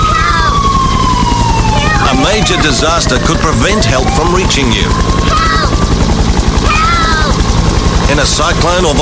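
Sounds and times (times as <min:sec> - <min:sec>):
helicopter rotor chopping: 0:00.0 - 0:09.0
speech: 0:02.4 - 0:05.6, 0:08.1 - 0:09.0.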